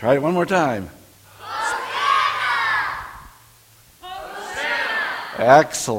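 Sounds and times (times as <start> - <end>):
speech: 0.0 - 1.0, 5.4 - 5.9
audience shouting Hosanna in unison: 1.3 - 5.7.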